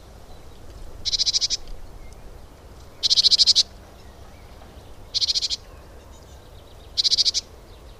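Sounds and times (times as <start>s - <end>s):
background hiss: 0.0s - 7.9s
great tit Parus major giving harsh buzzy rattling calls: 1.0s - 1.6s, 5.1s - 5.7s, 7.0s - 7.5s.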